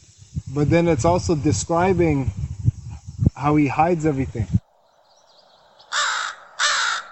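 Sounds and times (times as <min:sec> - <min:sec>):
speech: 0:00.5 - 0:02.4, 0:03.4 - 0:04.6
crow cawing: 0:05.8 - 0:07.1.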